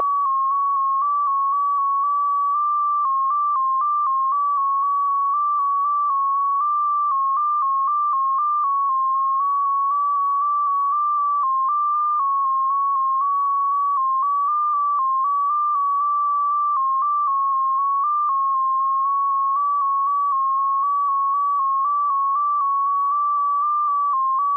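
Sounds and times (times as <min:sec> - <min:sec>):
DominoEX 4 baud digital radio signal: 0:00.0 - 0:24.5.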